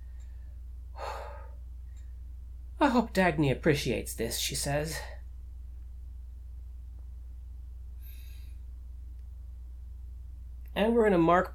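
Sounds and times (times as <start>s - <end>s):
steady low hum: 0.0s - 11.5s
wounded woman panting, recovering her breath: 1.0s - 1.6s
speech: 2.8s - 5.2s, 10.8s - 11.5s.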